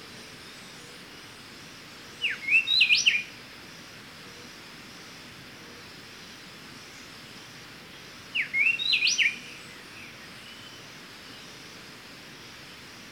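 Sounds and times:
steady hiss: 0.0 - 13.1
Pheugopedius sclateri speckle-breasted wren singing whistled phrases: 2.2 - 3.4, 8.3 - 10.8.

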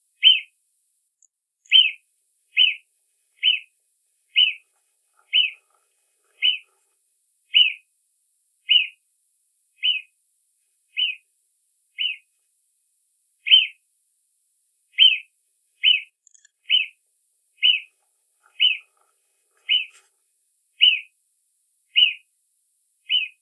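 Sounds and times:
marmot giving sharp high whistles: 0.2 - 0.5, 1.7 - 2.0, 2.6 - 2.8, 3.4 - 3.7, 4.4 - 4.6, 5.3 - 5.6, 6.4 - 6.6, 7.5 - 7.8, 8.7 - 9.0, 9.8 - 10.1, 11.0 - 11.2, 12.0 - 12.2, 13.5 - 13.8, 15.0 - 15.2, 15.8 - 16.1, 16.7 - 17.0, 17.6 - 17.9, 18.6 - 18.9, 19.6 - 19.9, 20.8 - 21.1, 22.0 - 22.2, 23.1 - 23.4.

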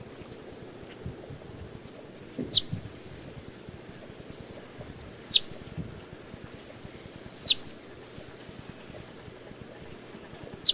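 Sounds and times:
steady high insect-like tone: 0.0 - 10.7
boat-tailed grackle sharp high downslurred calls: 2.5 - 2.8, 5.3 - 5.7, 7.4 - 7.8, 10.6 - 10.7.

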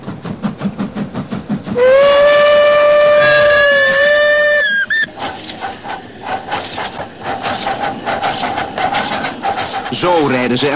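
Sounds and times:
steam train chuffing arriving at a small station between Apeldoorn and Dieren in the Netherlands: 0.0 - 10.7
speech: 1.8 - 2.0, 10.0 - 10.7
long loud steam whistle: 1.8 - 5.1.

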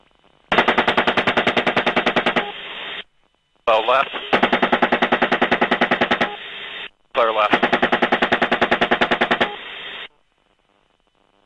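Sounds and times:
helicopter-mounted gun firing a rapid burst: 0.5 - 2.7, 4.2 - 6.5, 7.3 - 10.1
speech: 3.8 - 4.7, 7.2 - 7.8.

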